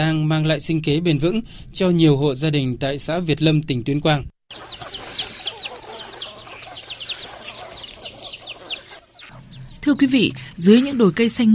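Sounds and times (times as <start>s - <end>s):
speech: 0.0s - 4.8s, 9.9s - 11.5s
flock of free-range chickens clucking outdoors on tree-covered hills in Vietnam: 4.5s - 11.5s.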